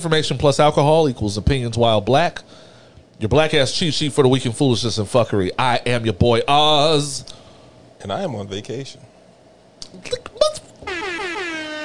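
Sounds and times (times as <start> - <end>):
speech: 0.0 - 7.4, 8.0 - 9.1, 9.8 - 10.4
air horn blast: 10.8 - 11.8.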